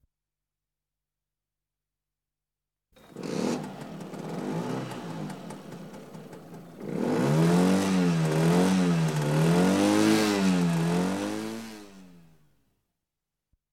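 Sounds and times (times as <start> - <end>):
Lambretta scooter pulling away: 3.0 - 12.3.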